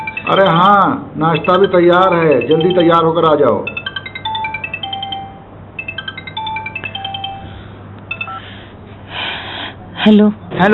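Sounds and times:
telephone ringing with a melodic electronic ringtone: 0.0s - 8.5s
speech: 0.3s - 3.8s, 10.1s - 10.7s.

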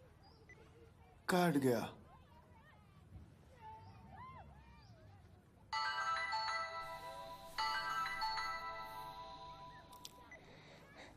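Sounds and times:
speech: 1.3s - 2.0s
phone ringing with electronic melodic ringtone: 5.7s - 10.6s.

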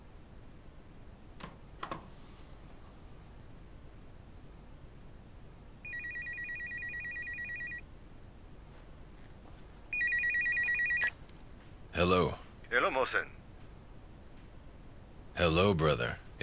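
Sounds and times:
quiet hiss: 0.0s - 16.4s
phone ringing in electronic trills: 5.8s - 7.8s, 9.9s - 11.1s
speech: 12.0s - 13.4s, 15.4s - 16.2s.

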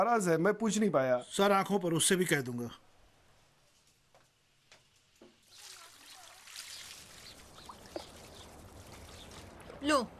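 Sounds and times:
speech: 0.0s - 2.9s, 9.8s - 10.1s
small drips and clatters: 3.7s - 9.9s
water poured and splashing as someone washes: 5.0s - 10.1s.

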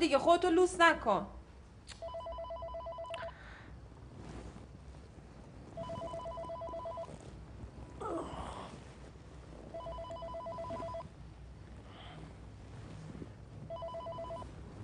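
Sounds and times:
speech: 0.0s - 1.4s
faint hum: 0.0s - 14.8s
telephone ringing with electronic trill: 2.0s - 3.4s, 5.8s - 7.2s, 9.7s - 11.1s, 13.7s - 14.5s.

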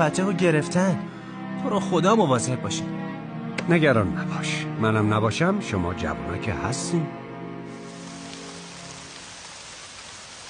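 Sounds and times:
speech: 0.0s - 3.1s, 3.7s - 7.2s
steady rain pouring on a surface: 7.7s - 10.4s.

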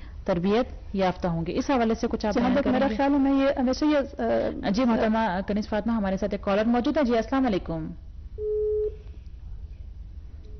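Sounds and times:
speech: 0.3s - 8.0s
telephone line beep after a caller disconnects: 8.4s - 9.0s.

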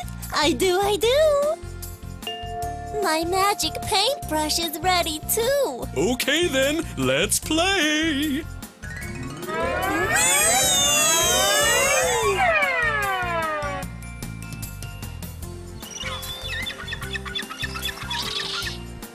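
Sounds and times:
speech: 0.4s - 1.6s, 2.9s - 8.6s
musical backing: 2.3s - 19.1s
loud seagull cries: 10.2s - 13.9s, 15.9s - 18.8s.

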